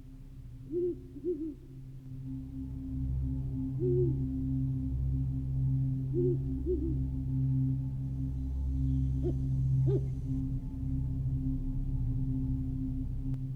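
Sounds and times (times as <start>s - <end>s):
faint steady low hum: 0.0s - 13.5s
owl hooting in a dark forest at night: 0.6s - 1.9s, 3.6s - 4.8s, 5.9s - 10.5s.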